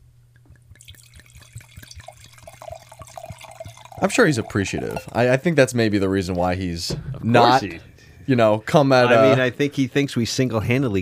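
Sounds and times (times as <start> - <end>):
liquid pouring: 0.4 - 5.7
speech: 4.0 - 10.9.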